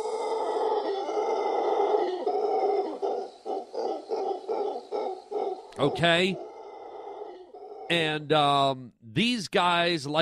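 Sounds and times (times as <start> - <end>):
howler monkey droning roars and deep pulsing grunts: 0.0 - 8.2
speech: 5.8 - 6.5, 7.9 - 10.1.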